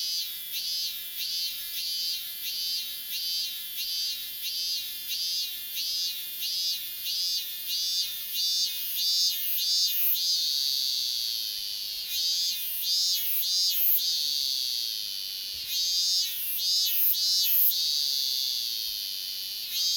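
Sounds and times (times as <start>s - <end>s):
robust cicada song: 0.1s - 19.9s.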